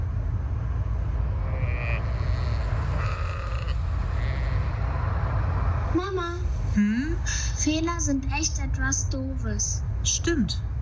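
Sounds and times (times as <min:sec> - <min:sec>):
steady low engine rumble: 0:00.0 - 0:10.8
faint wavering sheep bleats: 0:01.4 - 0:05.0
speech: 0:06.1 - 0:10.7.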